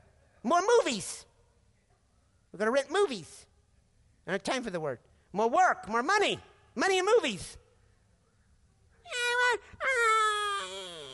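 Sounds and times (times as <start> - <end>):
speech: 0.4 - 1.3, 2.5 - 3.5, 4.2 - 7.6, 9.5 - 10.1
voice imitating a whining newborn baby: 9.1 - 11.1.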